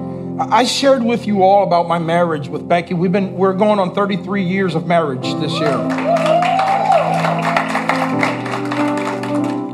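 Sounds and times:
speech: 0.4s - 7.2s
audience clapping: 5.6s - 9.7s.

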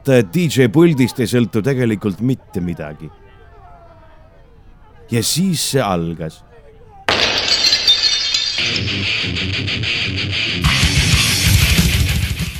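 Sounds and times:
speech: 0.0s - 3.2s, 5.1s - 6.5s, 8.7s - 11.1s
glass shattering: 7.1s - 9.3s
heavy fast music with double bass drums and guitar: 8.8s - 12.5s.

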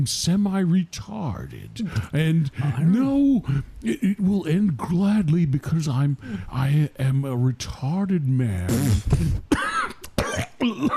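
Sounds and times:
speech: 0.0s - 9.6s, 10.6s - 10.9s
man coughing harshly and raspily, coughing up blood: 8.9s - 10.9s.

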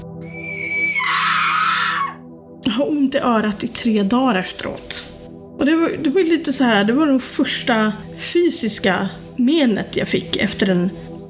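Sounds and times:
woman screaming into someone's ear: 0.2s - 2.2s
speech: 2.8s - 11.2s.

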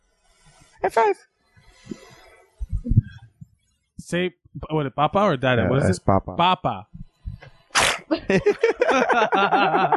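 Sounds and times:
speech: 0.8s - 1.3s, 4.1s - 7.0s, 8.1s - 9.9s
child sneezing: 7.8s - 8.1s
laughter: 8.1s - 9.9s.

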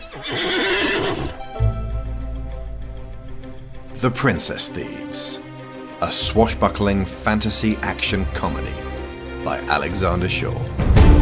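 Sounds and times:
horse neighing: 0.0s - 1.4s
speech: 0.2s - 0.6s, 4.0s - 11.2s.

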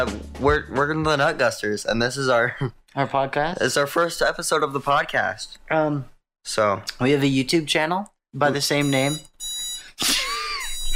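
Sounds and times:
speech: 0.0s - 9.3s, 10.0s - 10.2s
alarm clock ringing with a high electronic tone: 8.7s - 10.0s, 10.6s - 10.9s.

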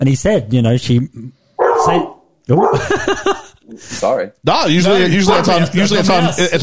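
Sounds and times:
speech: 0.0s - 6.6s
dog barking: 1.6s - 3.2s, 5.2s - 5.8s
laughter: 2.7s - 3.6s, 5.0s - 6.4s.

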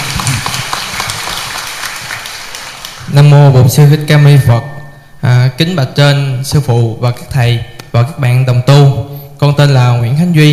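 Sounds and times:
audience applause: 0.0s - 3.1s
speech: 3.2s - 10.5s.

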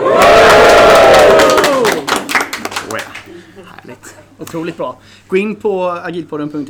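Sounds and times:
live audience cheering with whoops and shouts: 0.0s - 2.1s
scattered clapping: 0.2s - 3.4s
speech: 4.5s - 6.6s.

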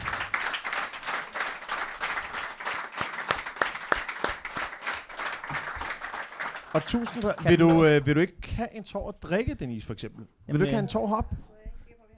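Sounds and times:
sharp claps: 0.0s - 7.9s
crowd applause welcoming a guest: 0.0s - 8.0s
speech: 6.8s - 11.4s.

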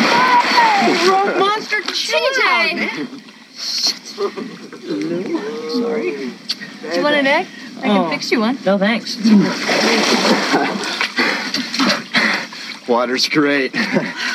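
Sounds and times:
cheering voices: 0.0s - 1.6s, 4.8s - 6.4s
excited voices shouting and whooping: 0.0s - 1.6s
big splash of someone plunging into pool water: 0.0s - 2.0s, 9.4s - 12.0s
pool water sloshing: 0.0s - 13.0s
speech: 2.0s - 11.3s, 12.9s - 14.3s.

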